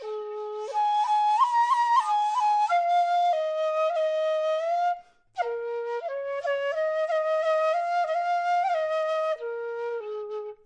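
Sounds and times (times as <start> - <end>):
bamboo flute melody: 0.0 - 10.6.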